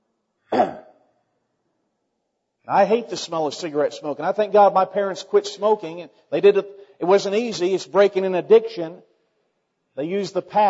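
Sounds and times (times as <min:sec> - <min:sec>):
preaching person coughing: 0:00.5 - 0:01.0
speech: 0:00.6 - 0:00.8, 0:02.7 - 0:09.1, 0:10.0 - 0:10.6.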